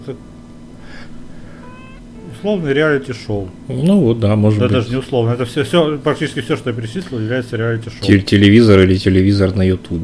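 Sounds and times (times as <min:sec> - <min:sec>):
speech: 0:00.0 - 0:01.2, 0:02.3 - 0:10.0
steady low hum: 0:00.0 - 0:10.0
cats yowling and wailing outside: 0:01.4 - 0:03.0.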